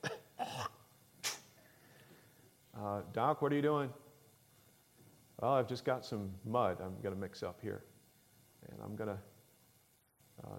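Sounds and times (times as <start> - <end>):
person imitating hacking up phlegm: 0.0 - 1.5
speech: 2.8 - 4.0, 5.4 - 7.9, 8.6 - 9.3.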